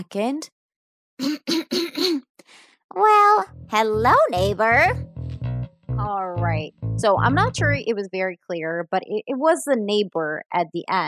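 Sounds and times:
speech: 0.0 - 0.6, 1.2 - 5.1, 5.9 - 11.0
raspy throat-clearing: 1.2 - 2.3.

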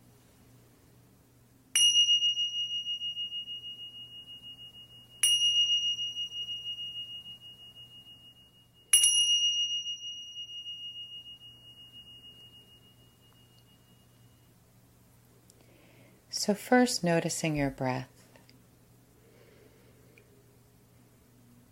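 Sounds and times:
faint low hum: 0.0 - 21.6
meditation bell strikes: 1.8 - 14.5
speech: 16.4 - 18.1.

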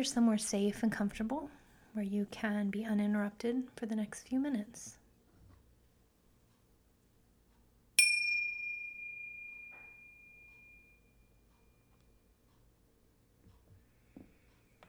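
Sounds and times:
speech: 0.0 - 5.0
meditation bell ringing: 8.0 - 11.4.

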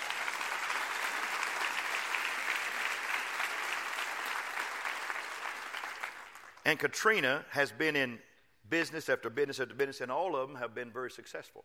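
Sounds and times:
crowd applauding: 0.0 - 6.6
speech: 6.7 - 11.6.

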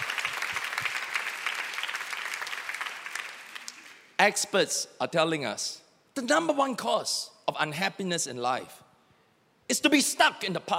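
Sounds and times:
crowd clapping: 0.0 - 4.2
speech: 4.2 - 8.8, 9.7 - 10.7.

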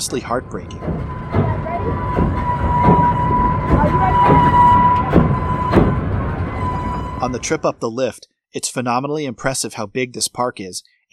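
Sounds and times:
speech: 0.0 - 2.1, 7.2 - 11.1
roller coaster wheels clacking across track joints: 0.0 - 7.0
roller coaster train squealing through a tight turn: 0.0 - 7.8.

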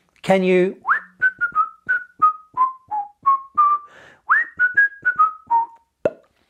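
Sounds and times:
speech: 0.3 - 0.8
person whistling a quick melodic tune: 0.8 - 5.9.

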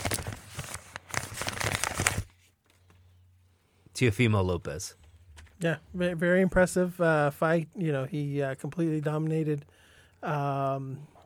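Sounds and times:
paper envelope being torn open: 0.0 - 2.3
speech: 4.0 - 5.0, 5.6 - 11.1.

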